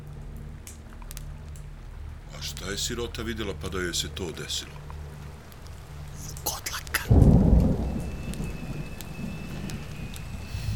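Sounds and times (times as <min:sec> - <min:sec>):
steady rain falling: 0:00.0 - 0:10.7
speech: 0:02.4 - 0:04.8
deep thunder rumble: 0:07.1 - 0:10.7.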